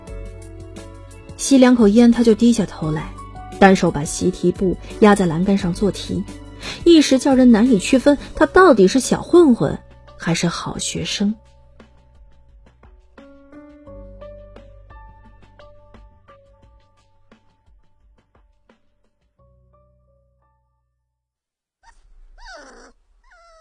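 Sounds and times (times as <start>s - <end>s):
speech: 1.4s - 11.5s
adult dog whining yelps while being fed at the foot of a staircase: 21.8s - 23.5s.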